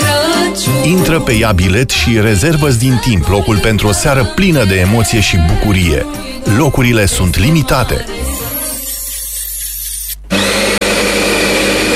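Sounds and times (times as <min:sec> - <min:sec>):
speech: 0:00.8 - 0:08.4
coffee grinder grinding coffee beans: 0:07.4 - 0:11.9.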